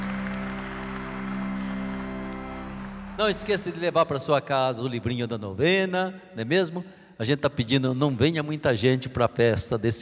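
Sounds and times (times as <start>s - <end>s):
audience applauding: 0.0s - 4.3s
sustained low musical tone: 0.0s - 4.8s
speech: 3.2s - 9.9s.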